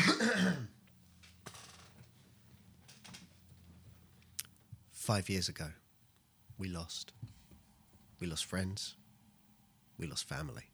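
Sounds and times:
loud raspy throat clearing: 0.0s - 0.7s
soft rustles: 0.8s - 5.0s, 6.2s - 8.3s
speech: 5.1s - 5.8s, 6.6s - 7.3s, 8.2s - 9.0s, 10.0s - 10.7s.

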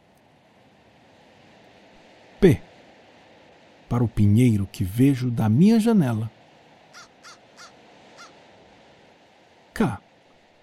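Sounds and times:
speech: 2.4s - 2.7s, 3.9s - 6.4s, 9.8s - 10.0s
crow cawing: 6.9s - 8.4s.

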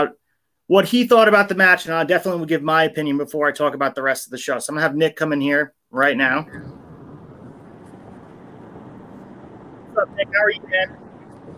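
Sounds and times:
speech: 0.0s - 6.8s, 10.0s - 11.5s
low rumble of car interior noise: 6.4s - 11.5s
narrowband phone-line voice speaking: 10.0s - 10.9s.

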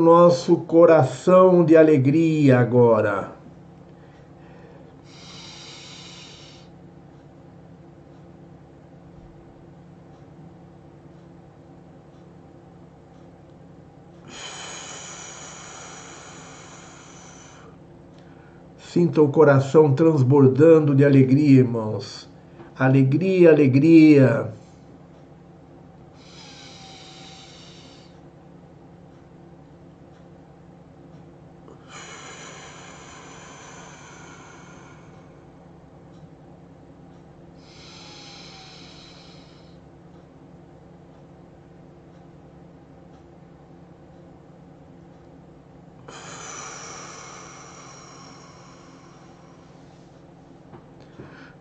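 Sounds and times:
speech: 0.0s - 3.4s, 19.0s - 24.6s
steady low hum: 0.0s - 51.5s
slow deep breathing during a breathing exercise: 3.9s - 7.2s, 14.1s - 18.8s, 26.1s - 28.3s, 31.7s - 36.2s, 37.5s - 40.2s, 46.0s - 51.5s.

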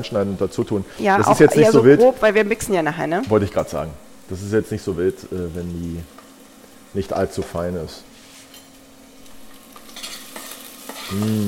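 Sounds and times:
speech: 0.0s - 6.2s, 6.9s - 8.1s, 11.1s - 11.4s
onions sizzling and crackling as they fry in a pan: 0.0s - 11.4s
stirring and scraping against the pan: 8.1s - 11.4s.

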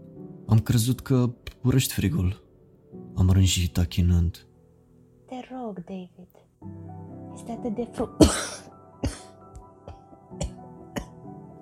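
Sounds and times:
speech: 0.5s - 2.4s, 3.2s - 4.5s, 5.7s - 6.8s, 7.4s - 8.6s
hacking coughs: 8.2s - 11.3s.

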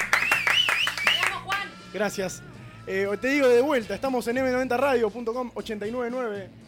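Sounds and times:
hands clapping: 0.0s - 1.7s
speech: 1.9s - 6.6s.

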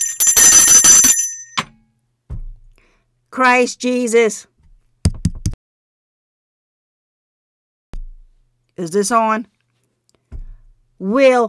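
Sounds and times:
bright bell ringing rapidly: 0.0s - 1.6s
low thud: 2.3s - 2.8s, 10.3s - 10.8s
speech: 3.4s - 4.5s, 8.8s - 9.6s, 11.0s - 11.4s.

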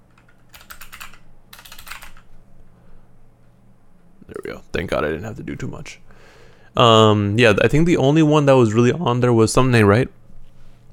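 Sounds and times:
faint steady low hum: 0.0s - 10.9s
computer keyboard typing with crisp clicking keystrokes: 0.1s - 2.3s
speech: 4.5s - 10.2s.

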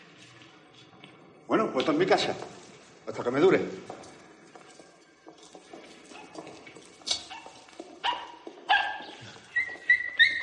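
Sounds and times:
speech: 1.5s - 4.0s
dog in a home barking and whimpering: 7.2s - 10.4s.

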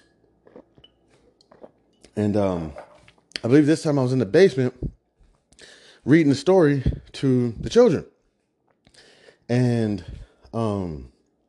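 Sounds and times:
person sipping a grape juice drink: 0.0s - 3.3s
swallowing: 0.4s - 2.9s
speech: 2.2s - 2.8s, 3.4s - 5.0s, 6.0s - 8.1s, 9.5s - 11.1s.

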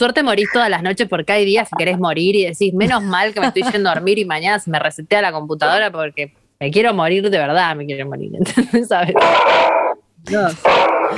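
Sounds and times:
speech: 0.0s - 11.1s
laughter: 2.8s - 4.1s
dog growling: 10.6s - 11.1s.

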